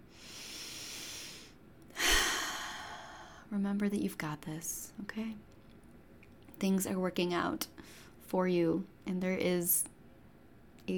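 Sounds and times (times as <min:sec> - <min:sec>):
slow deep breathing during a guided breathing exercise: 0:00.1 - 0:03.5
speech: 0:03.5 - 0:05.5, 0:06.6 - 0:09.9.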